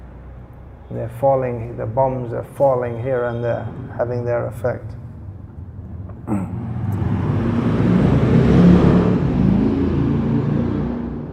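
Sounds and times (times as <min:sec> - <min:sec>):
speech: 0:00.9 - 0:05.0
loud motorbike engine with missing silencer roaring: 0:03.8 - 0:11.3.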